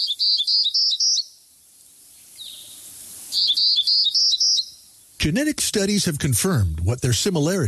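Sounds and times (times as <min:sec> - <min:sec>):
Townsend's warbler singing high buzzy notes: 0:00.0 - 0:01.4, 0:02.4 - 0:05.0
speech: 0:05.2 - 0:07.6.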